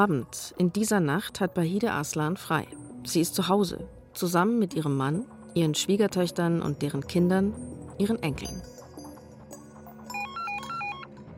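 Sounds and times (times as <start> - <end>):
speech: 0.0 - 8.8
electronic telephone ringtone: 10.0 - 11.3.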